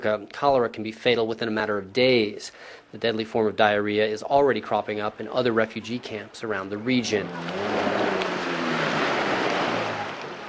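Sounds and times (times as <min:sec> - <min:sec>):
speech: 0:00.0 - 0:08.0
indistinct voices: 0:05.1 - 0:10.4
faint low engine-like hum: 0:05.6 - 0:10.4
surf breaking along a beach: 0:06.6 - 0:10.4.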